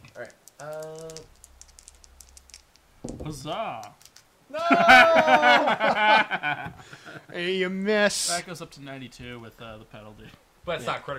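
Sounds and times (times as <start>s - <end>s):
speech: 0.2s - 1.0s, 3.3s - 11.1s
dice clattering across a table: 0.4s - 4.3s
laughter: 4.5s - 7.3s.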